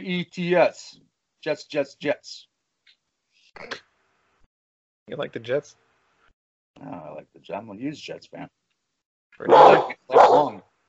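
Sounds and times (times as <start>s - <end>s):
speech: 0.0s - 2.5s, 3.6s - 3.9s, 5.1s - 5.8s, 6.8s - 8.6s, 9.4s - 10.7s
dog barking: 9.4s - 10.6s.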